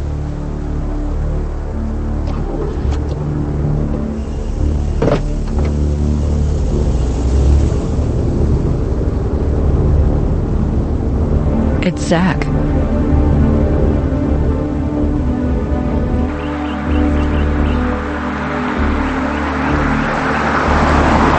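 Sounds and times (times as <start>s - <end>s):
car engine humming while reversing out of a driveway: 0.0s - 21.3s
speech: 12.1s - 12.5s.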